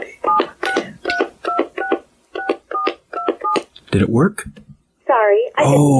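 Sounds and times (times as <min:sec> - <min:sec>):
telephone keypad DTMF tones dialing a phone number: 0:00.2 - 0:03.6
speech: 0:03.9 - 0:04.7, 0:05.3 - 0:05.9.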